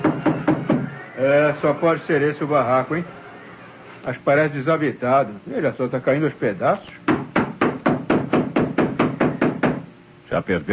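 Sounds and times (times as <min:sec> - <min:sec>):
knocking on the door of a dilapidated shack: 0:00.0 - 0:00.9, 0:07.1 - 0:09.9
speech: 0:01.2 - 0:03.2, 0:04.0 - 0:07.0, 0:10.4 - 0:10.7.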